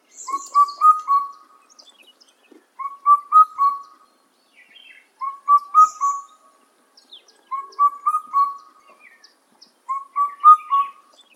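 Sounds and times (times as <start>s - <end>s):
Indian cuckoo Cuculus micropterus calling: 0.0s - 1.7s, 2.8s - 4.1s, 5.2s - 6.5s, 7.5s - 9.3s, 9.9s - 11.3s.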